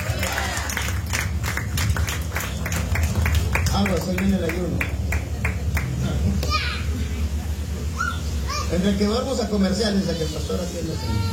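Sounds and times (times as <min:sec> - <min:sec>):
audience clapping applause: 0:00.0 - 0:06.6
faint murmur of voices: 0:00.0 - 0:11.3
speech: 0:03.8 - 0:05.0, 0:08.7 - 0:11.3.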